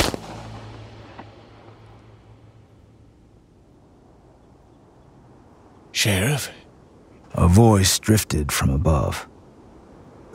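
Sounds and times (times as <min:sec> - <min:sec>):
gunshot: 0:00.0 - 0:01.4
speech: 0:06.0 - 0:06.6, 0:07.3 - 0:09.3.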